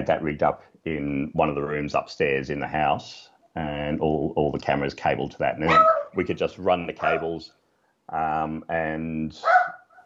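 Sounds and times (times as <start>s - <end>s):
speech: 0.0s - 9.6s
dog yelping: 5.6s - 6.2s, 9.4s - 10.0s
dog barking: 5.7s - 6.2s, 7.0s - 7.3s, 9.4s - 10.0s.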